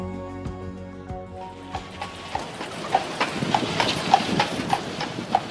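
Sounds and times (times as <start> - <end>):
horse hooves clip-clopping as a horse-drawn carriage gives a ride through Central Park in New York: 1.4 - 5.4.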